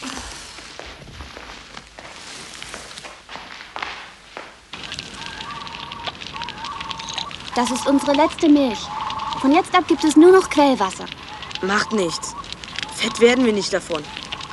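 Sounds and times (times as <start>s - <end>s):
fire being started and crackling: 0.0s - 14.5s
shuffling movement: 0.0s - 14.5s
speech: 7.6s - 12.3s, 13.0s - 14.2s.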